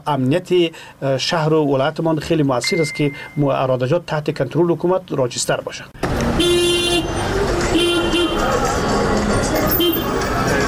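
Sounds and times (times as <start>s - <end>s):
speech: 0.0s - 6.6s
dense busy traffic din: 5.9s - 10.6s
taxi horns honking at traffic police gate: 6.3s - 8.5s.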